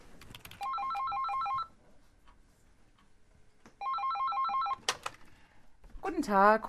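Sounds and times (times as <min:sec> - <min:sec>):
room noise: 0:00.0 - 0:06.6
office telephone ringing with a rapid electronic trill: 0:00.6 - 0:01.8, 0:03.8 - 0:04.9
speech: 0:06.2 - 0:06.6.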